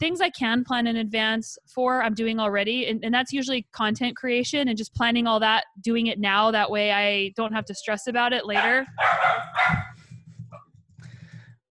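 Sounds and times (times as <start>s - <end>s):
speech: 0.0s - 9.9s
dogs barking at a delivery truck: 8.5s - 10.0s.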